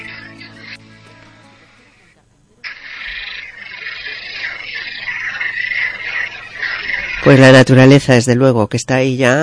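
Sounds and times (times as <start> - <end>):
dense chorus of frogs croaking: 0.0 - 1.2, 2.7 - 7.8
speech: 7.2 - 9.4.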